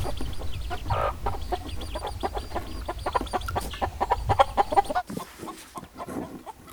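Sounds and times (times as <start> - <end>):
birds chirping: 0.0 - 5.2.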